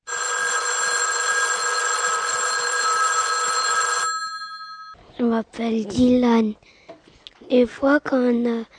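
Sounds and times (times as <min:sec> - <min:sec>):
loud telephone bell ringing with a metallic jangle: 0:00.0 - 0:05.0
speech: 0:05.2 - 0:06.8, 0:07.5 - 0:08.7.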